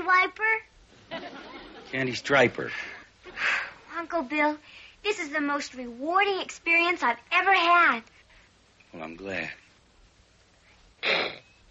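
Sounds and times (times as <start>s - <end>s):
speech: 1.9s - 8.2s, 8.9s - 9.6s, 11.0s - 11.4s
sneeze: 11.0s - 11.4s.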